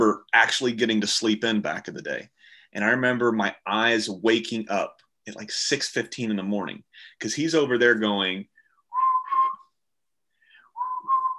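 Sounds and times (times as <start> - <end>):
speech: 0.0 - 8.5
person whistling a cartoon theme song in imitation of a pet: 8.9 - 9.8, 10.5 - 11.3.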